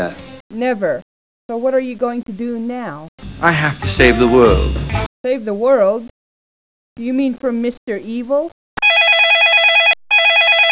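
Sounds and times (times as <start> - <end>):
speech: 0.0 - 6.2, 7.0 - 9.4
telephone ringing with an electronic warble: 8.8 - 10.6.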